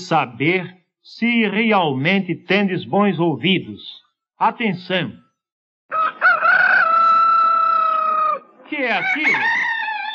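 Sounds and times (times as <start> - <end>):
speech: 0.0 - 5.2, 8.7 - 9.6
rooster crowing: 5.9 - 10.1.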